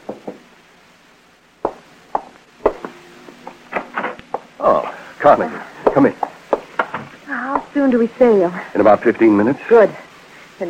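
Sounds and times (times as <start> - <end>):
sharp wooden knocks on a door: 0.0 - 0.4, 5.8 - 7.7
speech: 4.6 - 6.3, 7.8 - 10.0.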